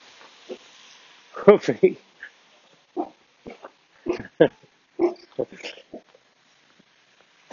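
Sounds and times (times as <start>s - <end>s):
speech: 1.5s - 2.1s, 4.4s - 4.6s
dog woofing in short gruff bursts: 3.0s - 4.3s, 5.0s - 5.4s.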